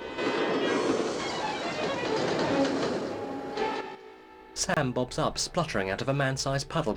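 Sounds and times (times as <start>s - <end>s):
express train hurtling past with rumbling wheels and wind noise: 0.0s - 4.6s
speech: 4.6s - 6.9s.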